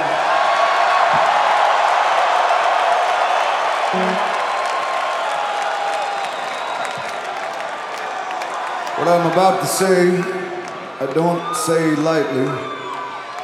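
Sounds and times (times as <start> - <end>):
large concert crowd cheering and applauding in Grand Rapids: 0.0 - 13.4
concert crowd whoops and whistles: 5.6 - 7.3, 12.4 - 13.4
speech: 9.1 - 10.4, 11.0 - 12.8.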